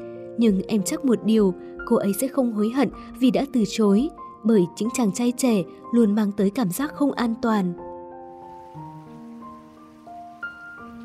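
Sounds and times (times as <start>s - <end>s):
speech: 0.4s - 7.8s
steady rainfall: 8.4s - 11.0s.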